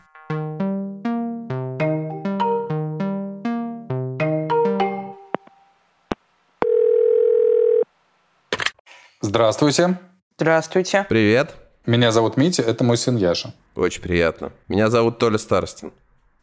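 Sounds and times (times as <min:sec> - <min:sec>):
bright plucked electronic melody: 0:00.0 - 0:05.4
outgoing call telephone ringing tone: 0:06.6 - 0:07.9
speech: 0:09.4 - 0:16.0.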